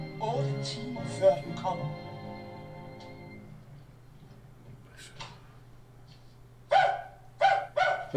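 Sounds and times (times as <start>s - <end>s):
speech: 0.3s - 2.1s
dog barking: 6.7s - 8.1s.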